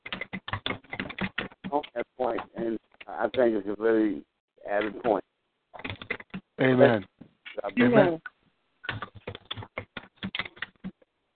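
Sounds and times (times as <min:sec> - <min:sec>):
typing on a keyboard during a group call: 0:00.0 - 0:02.6, 0:05.8 - 0:06.5, 0:08.9 - 0:11.0
speech: 0:01.8 - 0:05.3, 0:06.6 - 0:08.3.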